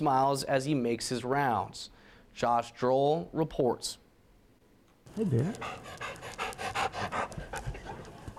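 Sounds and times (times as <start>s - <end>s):
speech: 0.0s - 4.0s, 5.1s - 6.4s
school therapy dog panting: 5.1s - 8.3s.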